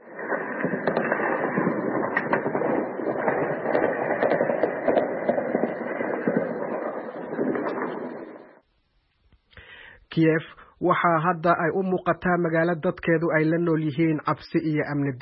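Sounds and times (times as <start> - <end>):
explosions in a city during a major attack: 0.0 - 8.6
heavy gunfire in a city during a major attack: 0.1 - 8.5
speech: 10.2 - 15.2.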